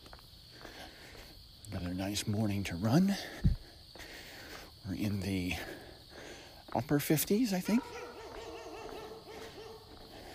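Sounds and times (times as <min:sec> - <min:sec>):
speech: 0:01.9 - 0:03.5, 0:04.9 - 0:05.8, 0:06.7 - 0:08.0
steady wind noise: 0:03.2 - 0:03.7
dog whine-like howling: 0:07.8 - 0:10.0.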